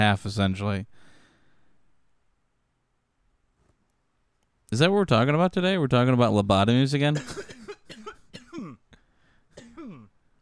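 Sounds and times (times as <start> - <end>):
speech: 0.0 - 1.1, 4.7 - 7.6
person coughing: 7.2 - 9.0, 9.6 - 10.2.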